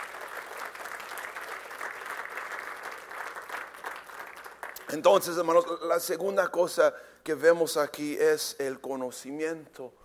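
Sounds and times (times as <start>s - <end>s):
audience applauding: 0.0s - 5.0s
speech: 4.9s - 10.0s.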